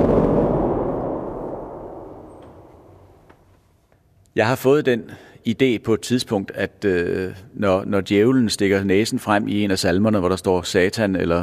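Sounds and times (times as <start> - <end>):
church organ thunder pedal pressing the lowest pedal keys: 0.0 - 3.3
speech: 4.4 - 11.4.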